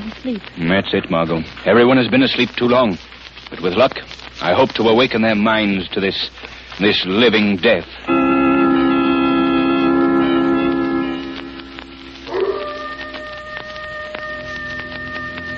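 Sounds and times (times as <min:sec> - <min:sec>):
crackling hiss: 0:00.0 - 0:15.5
speech: 0:00.2 - 0:08.2
coyote howling in distant hills: 0:12.3 - 0:15.5.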